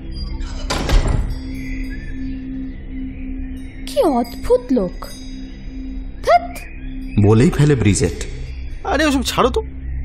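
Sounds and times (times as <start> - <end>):
door slammed shut: 0.6 - 1.5
speech: 4.0 - 5.2, 7.2 - 8.3, 8.9 - 9.7.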